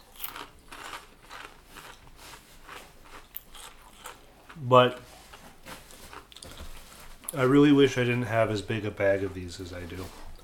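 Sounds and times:
crunchy creamy buttermilk flavored snacks being bitten and chewed: 0:00.0 - 0:04.7, 0:05.9 - 0:07.4
speech: 0:04.6 - 0:05.1, 0:07.3 - 0:10.2.

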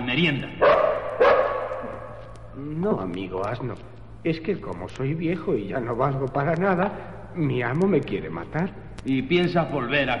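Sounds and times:
speech: 0:00.2 - 0:00.7, 0:02.6 - 0:10.1
dog barking: 0:00.6 - 0:02.3.

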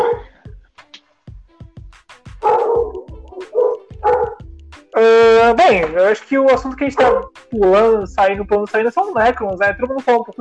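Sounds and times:
small dog barking excitedly with sharp yips: 0:00.0 - 0:00.2, 0:02.4 - 0:04.4, 0:07.0 - 0:07.3
speech: 0:05.0 - 0:10.3.

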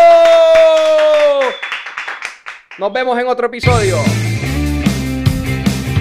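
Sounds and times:
scattered hand claps of applause from a small group: 0:00.0 - 0:02.8
speech: 0:02.8 - 0:04.4
loud sustained tone sliding slightly downward: 0:03.6 - 0:05.9.

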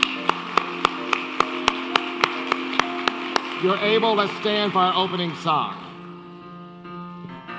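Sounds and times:
group clapping in rhythm: 0:00.0 - 0:05.8
speech: 0:03.6 - 0:05.8.

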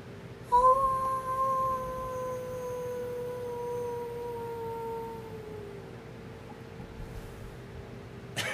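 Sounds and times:
person imitating a wolf howl: 0:00.5 - 0:05.9.

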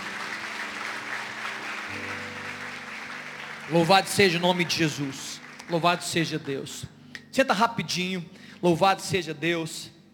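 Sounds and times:
audience applauding: 0:00.0 - 0:06.8
speech: 0:03.7 - 0:10.0.

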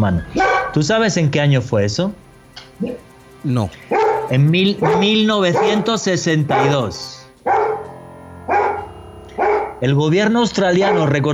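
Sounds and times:
speech: 0:00.0 - 0:07.6, 0:09.8 - 0:11.3
dog barking: 0:00.4 - 0:00.8, 0:03.9 - 0:06.9, 0:07.5 - 0:07.9, 0:08.5 - 0:09.8, 0:10.8 - 0:11.2.

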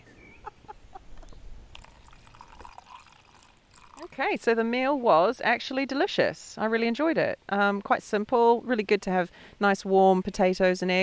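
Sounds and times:
water poured off from a cooking pot on the banks of the River Bergerac: 0:01.7 - 0:04.2
speech: 0:04.2 - 0:11.0.

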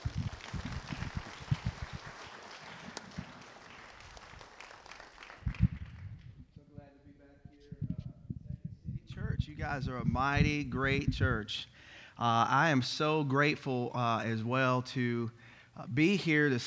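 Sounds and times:
large crowd applauding: 0:00.0 - 0:06.4
speech: 0:09.6 - 0:16.6.

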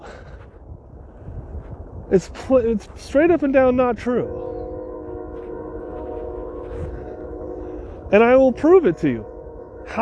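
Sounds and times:
train rumbling loudly: 0:01.7 - 0:09.9
speech: 0:02.1 - 0:04.5, 0:08.1 - 0:09.3.

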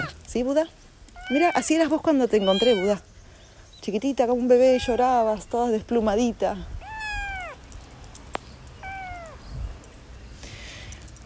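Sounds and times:
speech: 0:00.4 - 0:03.1, 0:03.8 - 0:06.8
high thin kitten meows bending downward in pitch: 0:01.2 - 0:01.6, 0:02.3 - 0:03.0, 0:06.8 - 0:07.6, 0:08.8 - 0:09.4.

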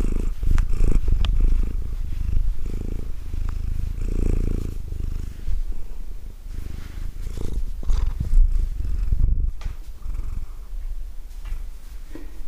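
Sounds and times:
hands stroking a cat's fur: 0:00.0 - 0:05.7, 0:06.5 - 0:08.8
domestic cat purring: 0:00.0 - 0:11.0.

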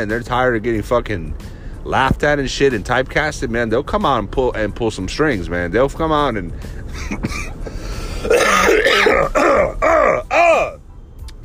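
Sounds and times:
speech: 0:00.0 - 0:07.6
person coughing roughly: 0:07.1 - 0:07.6, 0:08.2 - 0:10.8
throat clearing: 0:08.3 - 0:10.8.

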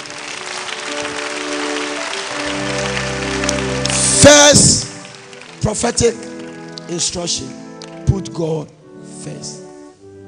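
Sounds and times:
audience clapping during a church sermon: 0:00.0 - 0:08.1
speech: 0:05.6 - 0:06.3, 0:06.9 - 0:09.6.

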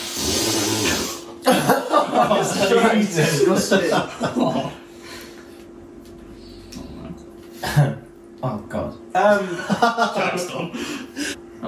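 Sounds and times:
raspy snore-like noise from a person's throat: 0:00.0 - 0:01.2
laughter: 0:01.4 - 0:04.9, 0:09.3 - 0:11.3
speech: 0:02.3 - 0:04.8, 0:09.2 - 0:11.0.

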